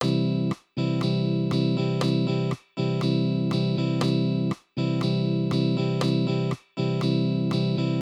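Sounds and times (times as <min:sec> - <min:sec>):
guitar strumming patterns: 0:00.0 - 0:07.9.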